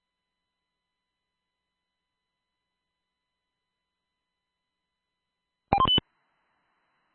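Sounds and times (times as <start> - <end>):
phone-like dialing tones over a radio channel: 5.7 - 6.0.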